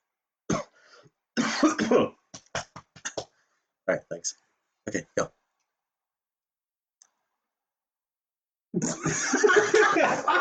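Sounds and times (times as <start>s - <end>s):
person coughing: 1.4s - 3.2s
speech: 1.6s - 2.2s, 3.9s - 5.4s, 8.8s - 10.3s
laughter: 8.8s - 10.3s.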